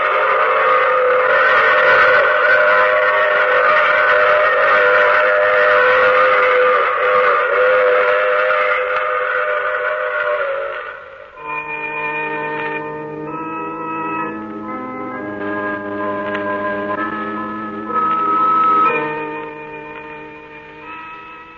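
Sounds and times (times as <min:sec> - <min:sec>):
train whistle: 0:00.0 - 0:21.5.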